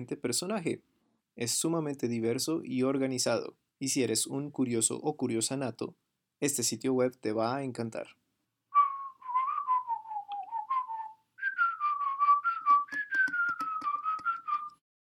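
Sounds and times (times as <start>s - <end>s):
speech: 0.0s - 8.2s
person whistling a TV series theme melody: 8.8s - 14.8s
soft rhythmic clicks: 12.8s - 14.8s.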